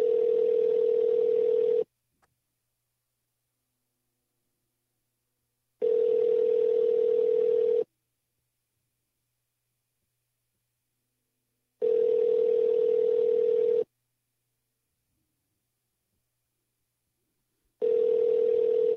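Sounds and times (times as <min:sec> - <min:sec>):
electronic ringback tone of an unanswered outgoing phone call: 0:00.0 - 0:01.8, 0:05.8 - 0:07.9, 0:11.8 - 0:13.8, 0:17.8 - 0:18.9.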